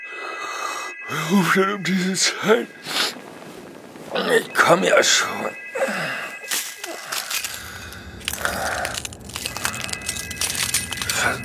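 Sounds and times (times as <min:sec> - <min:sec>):
speech: 0:01.1 - 0:03.0, 0:04.2 - 0:06.2
glass breaking and crunching: 0:06.4 - 0:11.4.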